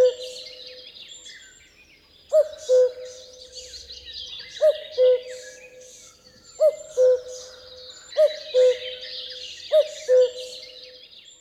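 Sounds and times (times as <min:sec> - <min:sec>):
Common cuckoo Cuculus canorus calling: 0:00.0 - 0:00.4, 0:02.4 - 0:03.2, 0:04.6 - 0:05.5, 0:06.6 - 0:07.5, 0:08.2 - 0:09.1, 0:09.7 - 0:10.6
other birds in the background: 0:00.0 - 0:11.3.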